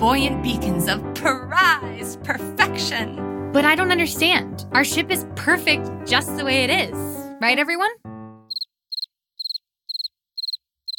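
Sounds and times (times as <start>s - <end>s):
speech: 0.0s - 8.0s
cricket chirping: 8.5s - 10.9s.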